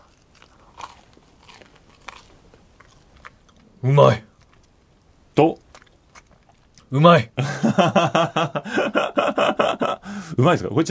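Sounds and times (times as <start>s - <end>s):
biting into a whole caramel-like sweet in one bite: 0.0s - 6.9s
quiet noise: 0.0s - 10.8s
speech: 3.8s - 4.3s, 5.4s - 5.6s, 6.9s - 10.8s
laughter: 7.4s - 10.1s.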